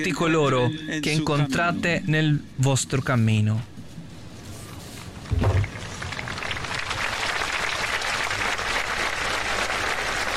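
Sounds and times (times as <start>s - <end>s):
speech: 0.0s - 3.7s
low thump: 5.3s - 5.8s
audience applauding after a homily: 5.6s - 10.3s.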